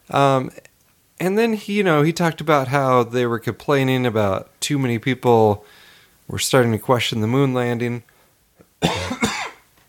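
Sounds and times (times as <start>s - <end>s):
speech: 0.1s - 8.1s, 8.8s - 9.1s
sharp harsh coughs trailing into a raspy exhale: 8.8s - 9.7s.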